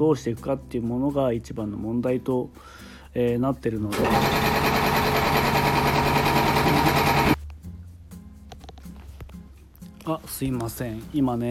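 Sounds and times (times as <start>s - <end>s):
speech: 0.0s - 5.6s, 10.1s - 11.4s
air compressor running: 3.9s - 7.4s.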